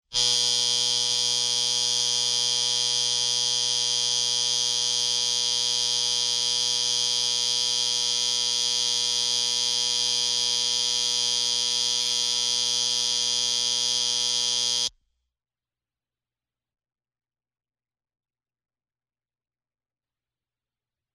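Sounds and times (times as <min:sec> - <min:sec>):
electric clock alarm: 0:00.1 - 0:14.9.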